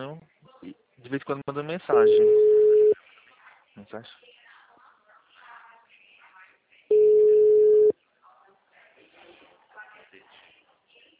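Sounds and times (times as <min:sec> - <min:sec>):
speech: 0:01.1 - 0:02.5, 0:03.8 - 0:04.3
people talking quietly: 0:01.9 - 0:11.1
telephone busy signal from an engaged number: 0:02.0 - 0:03.0, 0:06.9 - 0:07.9.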